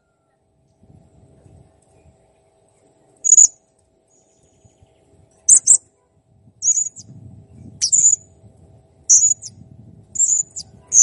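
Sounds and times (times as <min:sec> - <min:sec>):
faint low rumble: 0:00.0 - 0:11.0
blue-crowned hanging parrot squeaking: 0:03.3 - 0:03.5, 0:05.5 - 0:05.8, 0:06.6 - 0:07.0, 0:07.8 - 0:08.2, 0:09.1 - 0:09.5, 0:10.2 - 0:11.0.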